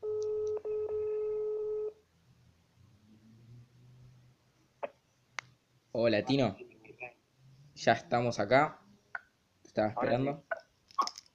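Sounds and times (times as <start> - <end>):
telephone tones while calling someone: 0.0 - 2.0
speech: 6.0 - 6.6, 7.8 - 8.8, 9.8 - 10.5.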